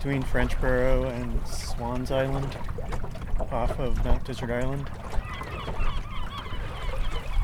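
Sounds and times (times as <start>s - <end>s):
speech: 0.0s - 5.2s
low rumble of wind: 0.0s - 7.4s
water heard while sailing past: 0.0s - 7.4s
crowd of gulls calling at a gull colony: 5.0s - 7.4s.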